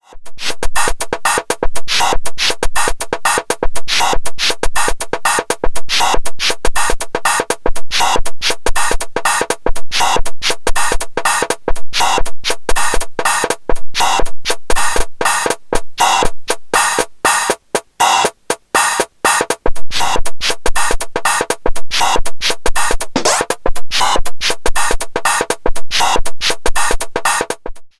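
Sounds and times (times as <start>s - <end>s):
drum machine voice four mix shuffle: 0.1s - 27.9s.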